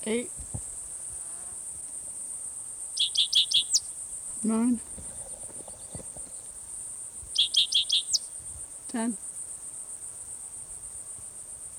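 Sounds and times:
speech: 0.0 - 0.4, 4.4 - 5.0, 8.9 - 9.2
cicadas droning: 0.0 - 11.7
sharp bright chirps: 7.4 - 8.3.

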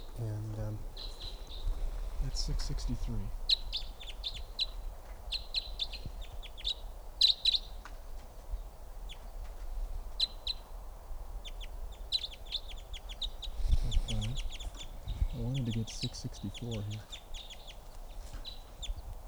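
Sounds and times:
steady low hum: 0.0 - 5.1, 13.0 - 19.0
wild birds chirping near a mist net: 0.0 - 19.2
speech: 2.4 - 3.4, 16.2 - 17.2.

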